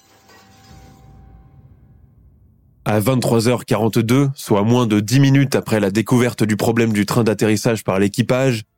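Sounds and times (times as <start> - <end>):
shattering debris clattering: 0.0 - 3.5
loud crash of metal wreckage: 0.0 - 4.3
heavy low rumbling roar: 0.7 - 5.7
speech: 2.9 - 8.7.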